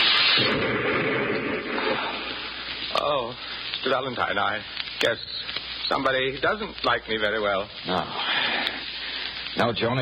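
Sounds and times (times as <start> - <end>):
hand grenade explosion: 0.0 - 2.9
speech: 3.2 - 8.4, 9.6 - 10.0.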